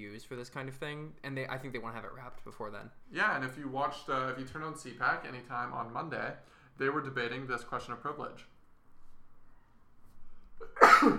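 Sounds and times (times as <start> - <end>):
speech: 0.0 - 8.5, 10.6 - 11.1
sneeze: 10.6 - 11.1.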